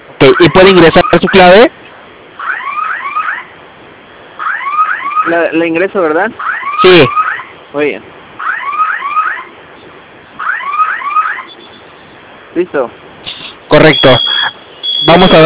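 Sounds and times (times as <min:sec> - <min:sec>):
home security alarm siren set off from the alarm keypad: 0:00.2 - 0:01.7, 0:02.4 - 0:03.5, 0:04.4 - 0:05.7, 0:06.4 - 0:07.6, 0:08.4 - 0:09.6, 0:10.4 - 0:11.8, 0:13.7 - 0:15.4
speech: 0:00.2 - 0:01.8, 0:05.3 - 0:08.2, 0:12.6 - 0:13.0, 0:13.7 - 0:14.3, 0:15.1 - 0:15.4.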